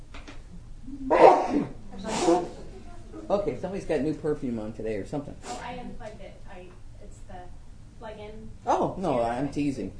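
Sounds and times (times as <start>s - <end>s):
person sneezing: 1.1s - 2.5s
speech: 3.3s - 6.8s, 8.1s - 9.9s.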